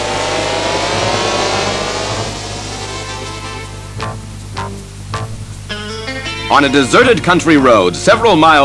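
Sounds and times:
powerful car engine revving as the car speeds away: 0.0s - 5.7s
speech: 6.5s - 8.6s.

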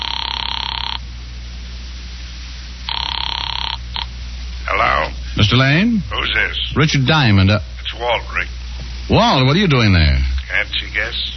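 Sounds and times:
telephone ringing through an earpiece on a call from a phone booth: 0.0s - 1.0s, 2.9s - 4.1s
speech: 5.4s - 11.3s.

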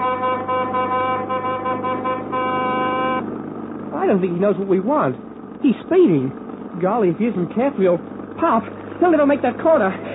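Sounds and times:
multi-toned car horn honking to signal a wish to overtake: 0.0s - 3.3s
speech: 4.1s - 10.1s.

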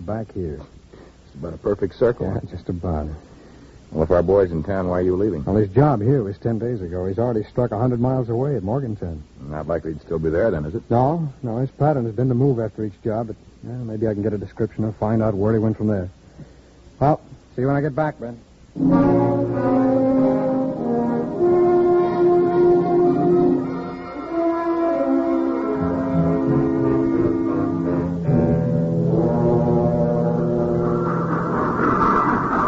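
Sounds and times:
speech: 0.0s - 0.8s, 1.4s - 3.3s, 3.9s - 19.7s
locomotive whistle blowing in long chordal tones: 18.8s - 32.5s.

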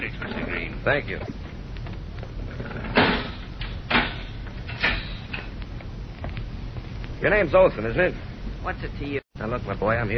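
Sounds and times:
speech: 0.0s - 1.4s, 7.2s - 10.1s
heavy steel cell door clanking as it is unlocked and opened: 2.8s - 5.5s.

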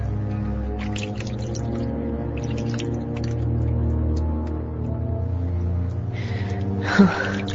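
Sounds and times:
water dripping and sloshing in a bathtub: 0.0s - 4.9s, 6.4s - 7.5s
water running into a bathtub: 0.7s - 3.5s, 6.9s - 7.5s
splash of someone stepping into a cold bath: 0.7s - 3.6s, 6.9s - 7.5s
person gasping: 6.2s - 7.5s.

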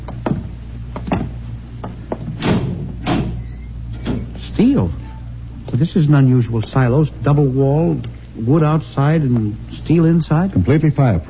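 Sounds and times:
steady low hum: 0.0s - 11.2s
door knocks and clunks: 0.2s - 3.4s
speech: 4.6s - 5.0s, 5.7s - 11.2s.

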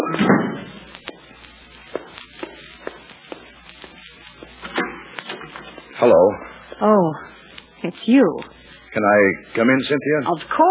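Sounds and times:
footsteps crossing the room: 0.0s - 6.8s
door thudding heavily: 0.2s - 0.6s
speech: 6.0s - 10.7s.

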